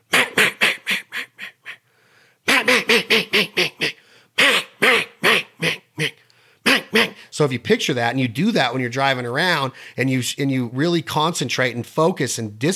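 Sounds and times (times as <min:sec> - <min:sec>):
duck call sounding raspy hen mallard quacks: 0:00.0 - 0:01.8, 0:02.5 - 0:07.2
speech: 0:02.9 - 0:03.8, 0:07.4 - 0:12.7.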